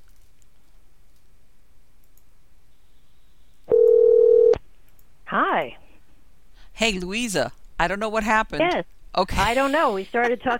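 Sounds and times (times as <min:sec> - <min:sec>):
single steady telephone tone: 0:03.7 - 0:04.6
speech: 0:06.8 - 0:10.5.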